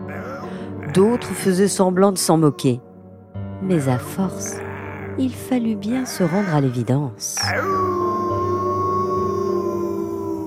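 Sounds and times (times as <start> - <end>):
wolf howling in a forest at nightfall: 0.0 - 1.8, 3.9 - 10.4
speech: 1.0 - 2.9, 3.6 - 4.6, 5.2 - 8.0.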